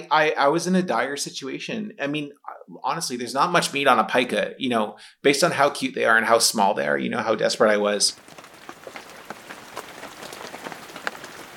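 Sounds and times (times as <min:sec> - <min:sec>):
speech: 0:00.0 - 0:08.4
steady rain pattering: 0:08.1 - 0:11.5.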